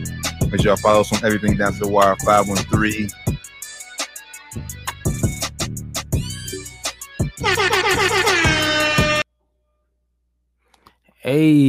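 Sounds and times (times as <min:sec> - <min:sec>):
speech: 0:00.5 - 0:03.2, 0:11.3 - 0:11.6
air horn blasts: 0:07.4 - 0:09.3.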